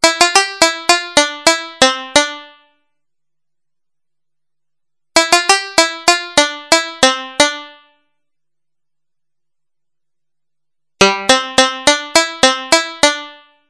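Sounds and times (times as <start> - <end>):
banjo synthesized on a Yamaha TX81Z: 0.0 - 3.0, 5.1 - 8.2, 11.0 - 13.6.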